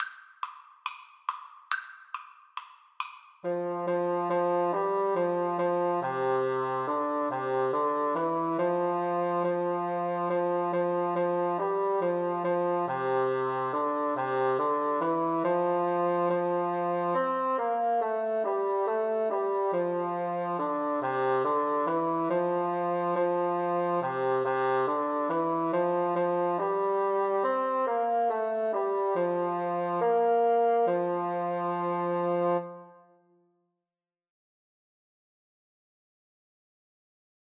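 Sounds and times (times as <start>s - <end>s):
bassoon duet: 3.4s - 33.0s.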